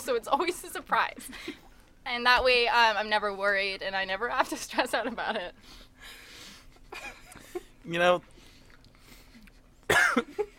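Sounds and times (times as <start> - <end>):
speech: 0.0 - 6.2, 7.9 - 8.3
person coughing from dust caught in the throat: 9.9 - 10.5.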